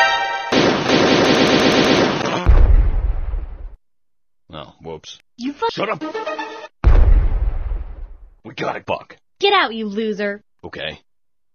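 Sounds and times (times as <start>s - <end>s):
rapid automatic gunfire: 0.5s - 2.4s
louder, deeper blast with low rumble: 2.4s - 3.8s, 6.8s - 8.4s
speech: 5.0s - 6.6s, 8.4s - 11.1s.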